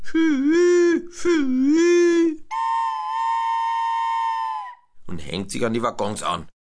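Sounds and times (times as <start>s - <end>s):
voice imitating a locomotive whistle: 0.0s - 4.9s
speech: 5.3s - 6.6s.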